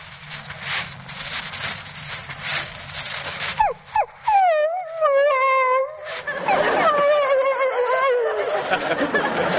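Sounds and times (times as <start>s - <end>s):
man imitating a dog whining and howling: 3.6s - 8.4s
laughter: 6.1s - 9.5s.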